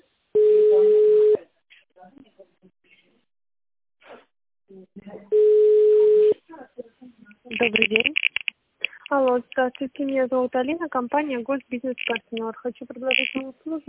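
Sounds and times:
telephone tone beeps while a call is transferred to a secretary: 0.4s - 1.4s, 5.4s - 6.4s
faint voice fragments: 7.5s - 9.7s, 13.0s - 13.5s
speech: 9.2s - 13.8s.

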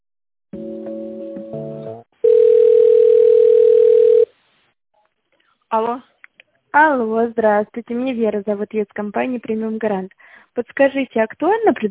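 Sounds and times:
telephone tones while a call is transferred: 2.2s - 4.3s
speech: 5.7s - 6.1s, 6.8s - 11.9s.

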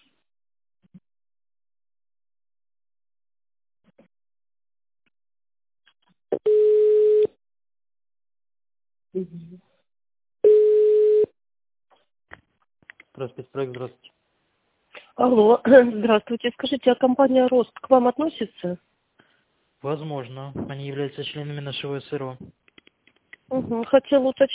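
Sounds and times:
telephone ringback tone while a call is transferred: 6.5s - 7.3s, 10.4s - 11.3s
speech: 9.2s - 9.8s, 13.2s - 14.2s, 15.2s - 18.9s, 19.8s - 22.6s, 23.5s - 24.5s.

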